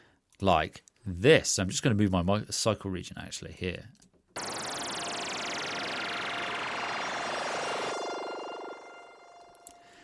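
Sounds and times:
speech: 0:00.4 - 0:04.1
synthesized bubbling effect from the ANA 2 synth: 0:04.4 - 0:09.4.

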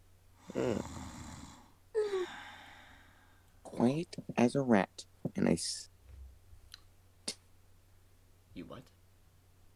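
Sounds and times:
guard snoring while resting his head on his hand at a desk: 0:00.4 - 0:02.4
speech: 0:03.8 - 0:05.9.

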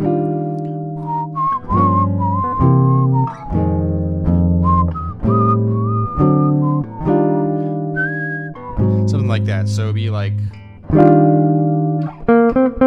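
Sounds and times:
sustained backing chords: 0:00.0 - 0:12.7
whistled melody imitating a jazz saxophone solo: 0:00.6 - 0:09.4
speech: 0:09.7 - 0:11.2.

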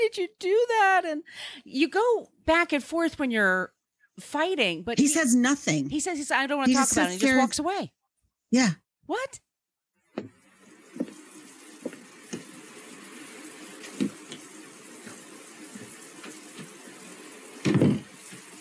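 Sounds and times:
speech: 0:00.0 - 0:09.4
soft knocks and clunks: 0:10.1 - 0:10.4, 0:17.6 - 0:18.1
shower water spraying: 0:10.4 - 0:18.6
heavy thump: 0:17.6 - 0:18.1.

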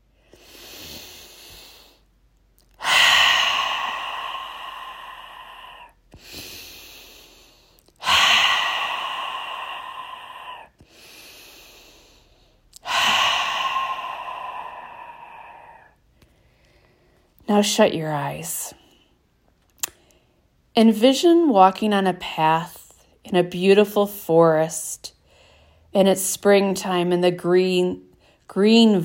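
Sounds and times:
person taking deep breaths during a guided meditation: 0:00.0 - 0:02.2, 0:02.8 - 0:17.3
speech: 0:17.5 - 0:18.8, 0:20.8 - 0:25.2, 0:26.0 - 0:29.0.

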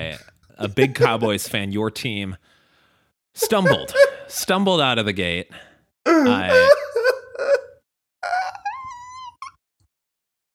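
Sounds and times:
speech: 0:00.2 - 0:02.6, 0:03.4 - 0:06.8
laughter: 0:00.8 - 0:01.4, 0:03.4 - 0:04.3, 0:06.3 - 0:07.7
man groaning and moaning in anguish while watching a football game: 0:06.1 - 0:06.8.

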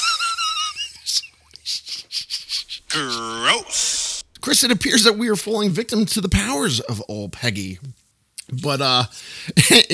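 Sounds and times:
raspy gasps: 0:01.6 - 0:04.4, 0:09.1 - 0:09.6
labored wheezing breathing: 0:01.7 - 0:04.4
strained groaning exhale: 0:02.9 - 0:04.3
speech: 0:02.9 - 0:09.9.

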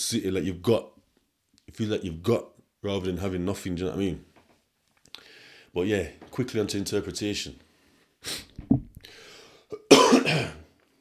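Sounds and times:
speech: 0:00.1 - 0:01.0, 0:01.8 - 0:04.3, 0:05.7 - 0:07.6, 0:08.2 - 0:08.8
nasal sniffling: 0:08.2 - 0:09.8
short throaty coughs: 0:09.8 - 0:10.7.

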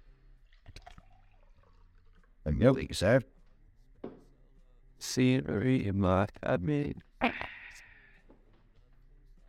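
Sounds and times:
water pouring into a cup: 0:00.4 - 0:02.4
speech: 0:02.5 - 0:03.4, 0:05.0 - 0:07.4.

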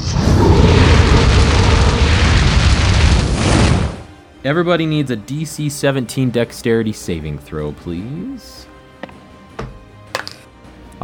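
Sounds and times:
dragon breathing fire sound effect: 0:00.0 - 0:04.1
speech: 0:04.4 - 0:08.7.

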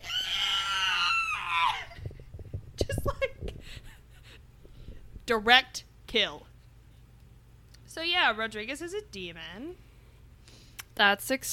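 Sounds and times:
human voice imitating a shrill screech: 0:00.0 - 0:02.0
speech: 0:05.3 - 0:06.5, 0:08.0 - 0:09.9, 0:11.0 - 0:11.5.

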